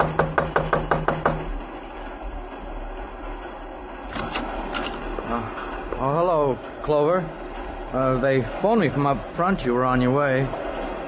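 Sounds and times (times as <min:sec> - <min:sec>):
knocking on a door: 0:00.0 - 0:01.5
low rumble: 0:00.0 - 0:11.0
speech: 0:08.2 - 0:10.7.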